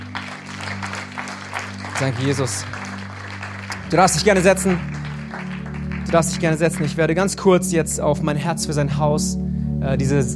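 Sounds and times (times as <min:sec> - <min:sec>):
audience applause: 0:00.0 - 0:07.4
speech: 0:02.0 - 0:02.8, 0:03.9 - 0:04.9, 0:06.1 - 0:10.3.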